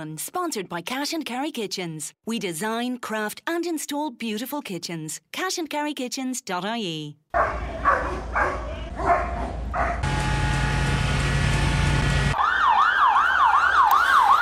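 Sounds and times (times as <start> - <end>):
speech: 0.0 - 10.2
police dogs barking: 7.4 - 10.0
police siren wailing: 10.0 - 14.4.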